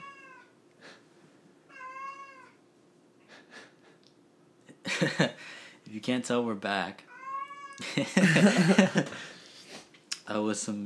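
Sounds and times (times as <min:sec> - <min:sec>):
domestic cat meowing in a drawn-out warbling call: 0:00.0 - 0:00.5, 0:01.7 - 0:02.6, 0:07.1 - 0:07.8
speech: 0:05.0 - 0:07.1, 0:07.8 - 0:09.4, 0:10.3 - 0:10.8
laughter: 0:07.8 - 0:09.3.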